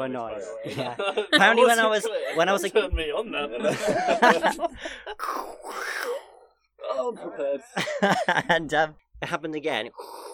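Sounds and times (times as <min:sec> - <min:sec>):
speech: 0:00.0 - 0:06.2, 0:07.0 - 0:10.3
laughter: 0:00.4 - 0:05.2, 0:06.9 - 0:08.7
person mimicking the snoring of a man asleep: 0:05.2 - 0:06.5, 0:10.0 - 0:10.3.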